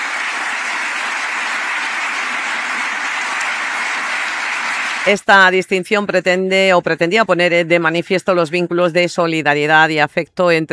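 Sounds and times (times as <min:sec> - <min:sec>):
large crowd applauding at an award ceremony: 0:00.0 - 0:05.2
speech: 0:05.0 - 0:10.7.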